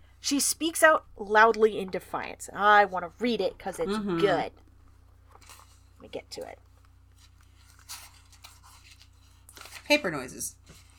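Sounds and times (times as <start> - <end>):
low steady hum: 0.0 - 10.9
speech: 0.2 - 4.6, 5.4 - 6.6, 9.9 - 10.6
paper rustling and crinkling: 6.7 - 10.9.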